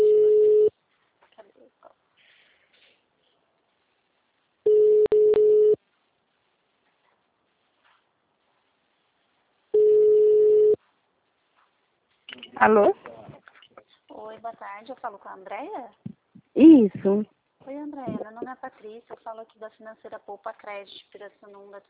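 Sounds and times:
ringback tone of an outgoing phone call: 0.0 - 0.7, 4.7 - 5.8, 9.8 - 10.8
speech: 12.6 - 13.1, 14.4 - 21.8.

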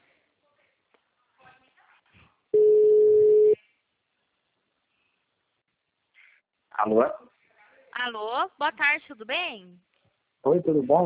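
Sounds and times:
telephone ringback tone while a call is being placed: 2.6 - 3.6
speech: 6.8 - 7.3, 8.0 - 11.0.

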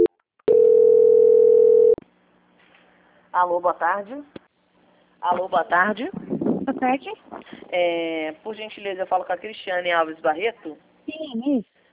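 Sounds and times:
telephone call transfer tone: 0.0 - 2.0
speech: 3.4 - 4.4, 5.2 - 11.7.

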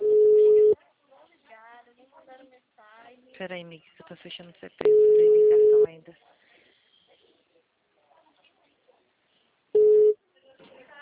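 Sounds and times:
telephone tone beep as a call goes through: 0.0 - 0.8, 4.9 - 5.9, 9.8 - 10.2
speech: 3.4 - 6.4.

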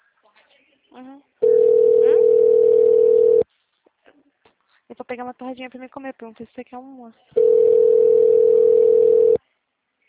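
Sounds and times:
speech: 0.9 - 1.6, 5.1 - 7.7
telephone ringing tone while a call waits to be answered: 1.4 - 3.4, 7.4 - 9.4.

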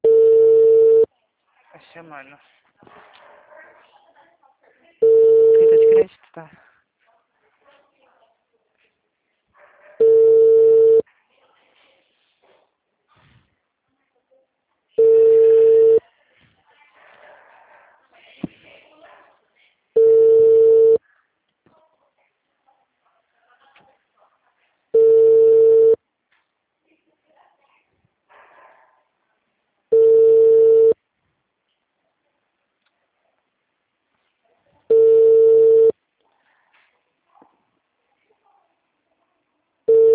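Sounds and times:
ringback tone of an unanswered outgoing telephone call: 0.0 - 1.1, 5.0 - 6.0, 10.0 - 11.0, 15.0 - 16.0, 20.0 - 21.0, 25.0 - 26.0, 29.9 - 31.0, 34.9 - 35.9, 39.9 - 40.1
speech: 2.0 - 3.3, 6.0 - 6.7.

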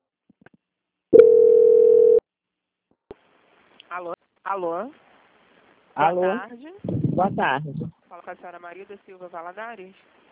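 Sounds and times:
telephone transfer beeps while a bank call is on hold: 1.1 - 2.2
speech: 4.0 - 5.0, 5.9 - 10.2.

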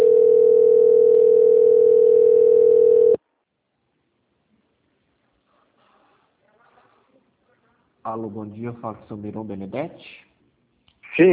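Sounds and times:
steady telephone tone while a customer call is transferred: 0.0 - 3.2
speech: 8.1 - 10.3, 11.2 - 11.3.

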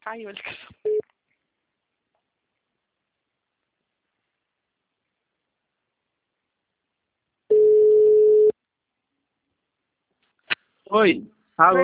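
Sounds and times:
speech: 0.0 - 0.9, 10.9 - 11.8
telephone busy tone after a dropped call: 7.5 - 8.5.

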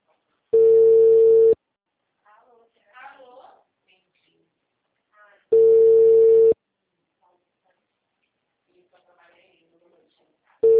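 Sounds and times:
ringback tones of an unanswered phone call: 0.6 - 1.6, 5.5 - 6.6.

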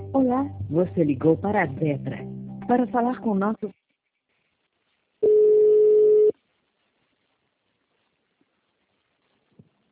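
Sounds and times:
speech: 0.3 - 3.8
telephone busy tone after a dropped call: 5.2 - 6.3.

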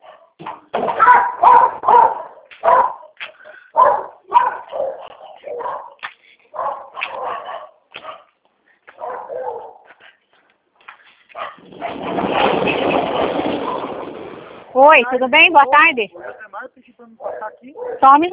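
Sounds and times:
female dog barking: 0.0 - 8.3, 8.9 - 10.0, 11.3 - 12.0, 16.2 - 16.5, 17.2 - 18.1
gate opening: 11.6 - 14.7
speech: 14.9 - 16.3, 17.4 - 18.3.

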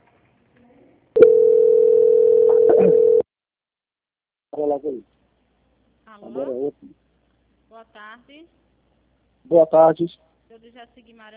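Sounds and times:
telephone line tone during bank call transfer: 1.2 - 3.2
speech: 4.7 - 5.2, 6.2 - 7.0, 7.7 - 8.6, 9.4 - 11.3.

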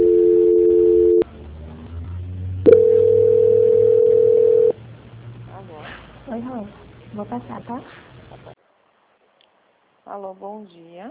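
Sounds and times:
telephone line tones during a call transfer: 0.0 - 1.2, 2.7 - 4.8
speech: 7.2 - 8.2, 10.2 - 11.0.

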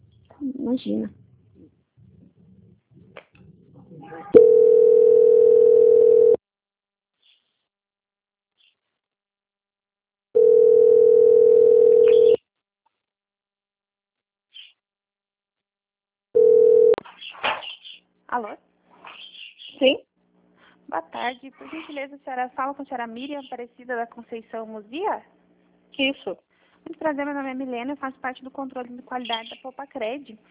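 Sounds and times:
speech: 0.4 - 1.2, 21.1 - 30.5
telephone line tone while a call is held for transfer: 4.4 - 6.4, 10.4 - 12.4, 16.4 - 17.0.

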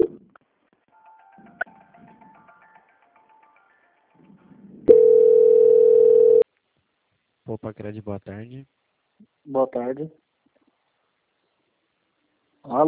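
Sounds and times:
telephone line tone while a call is transferred: 4.9 - 6.4
speech: 7.6 - 10.2, 12.6 - 12.8.

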